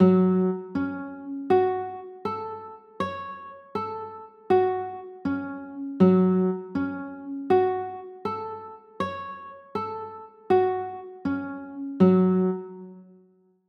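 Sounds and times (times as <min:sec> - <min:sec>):
G flat minor ninth guitar chord: 0:00.0 - 0:02.5, 0:04.5 - 0:09.2, 0:09.9 - 0:13.1.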